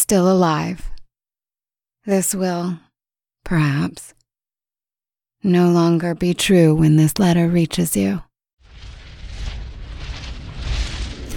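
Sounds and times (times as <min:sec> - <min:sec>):
speech: 0:00.1 - 0:00.9, 0:02.0 - 0:02.9, 0:03.5 - 0:04.2, 0:05.4 - 0:08.3
hissing and crackling of volcanic eruption: 0:08.6 - 0:11.3
volcanic eruption on Martinique rumbling: 0:08.6 - 0:11.3.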